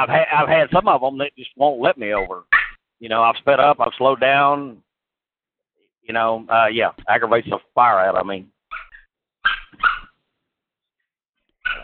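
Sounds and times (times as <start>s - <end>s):
speech: 0.0s - 4.8s, 6.1s - 8.5s
puppies barking and yipping: 8.7s - 10.2s, 11.6s - 11.8s.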